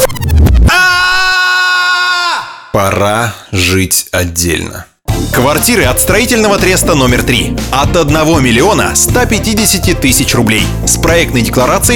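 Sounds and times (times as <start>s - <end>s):
woman screaming: 0.7s - 2.7s
speech: 3.0s - 11.9s.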